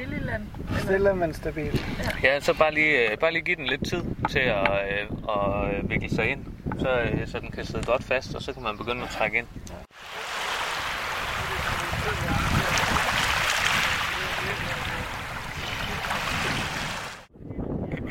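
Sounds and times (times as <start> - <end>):
speech: 0.0 - 9.8
gusty wind buffeting the microphone: 0.0 - 18.0
rushing water at a fishing spot: 9.9 - 17.3.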